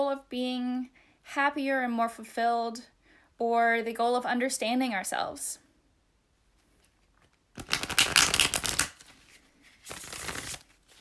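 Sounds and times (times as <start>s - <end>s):
speech: 0.1s - 5.6s
tarot cards being shuffled: 6.6s - 10.9s.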